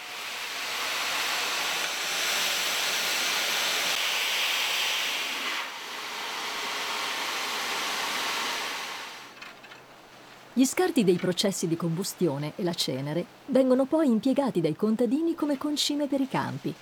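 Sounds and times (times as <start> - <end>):
steam flowing into the cooling system of a mountain pine oil distillation: 0.0 - 9.4
speech: 10.6 - 16.8.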